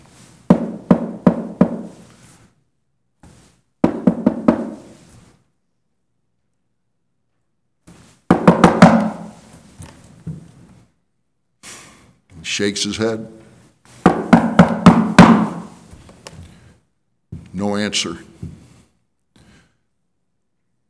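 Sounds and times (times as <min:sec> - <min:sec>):
knuckles knocking on a wooden door: 0:00.5 - 0:02.0, 0:03.8 - 0:04.8, 0:08.3 - 0:09.4, 0:14.1 - 0:15.7
speech: 0:12.6 - 0:13.4, 0:17.9 - 0:18.3.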